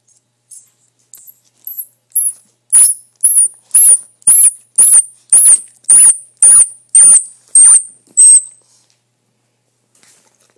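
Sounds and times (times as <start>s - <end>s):
baby squirrel crying: 2.8s - 8.4s.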